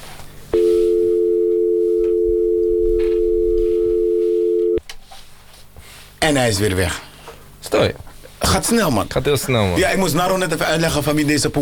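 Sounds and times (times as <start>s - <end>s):
telephone ringing with a steady electronic tone: 0.6s - 4.8s
speech: 6.2s - 7.1s, 7.7s - 11.6s.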